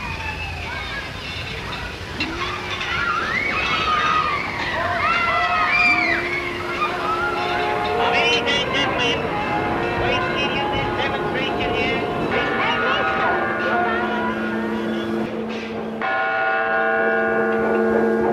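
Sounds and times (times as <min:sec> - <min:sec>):
1920s engines rumbling and rattling in a New York City street: 0:00.0 - 0:18.3
crowd voices in a busy street: 0:00.0 - 0:18.3
church bells tolling in New York City: 0:03.6 - 0:18.3
long horn-like tones: 0:05.9 - 0:18.3.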